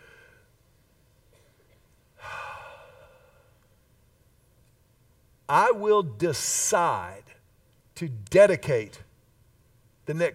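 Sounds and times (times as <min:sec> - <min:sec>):
deep breath: 0:00.0 - 0:00.5, 0:02.2 - 0:03.6
speech: 0:05.5 - 0:07.4, 0:08.0 - 0:09.1, 0:10.1 - 0:10.3.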